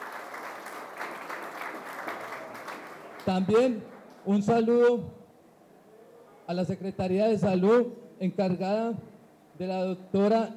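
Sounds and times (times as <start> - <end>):
crowd applauding: 0.0 - 4.2
speech: 3.2 - 5.2, 6.5 - 10.5.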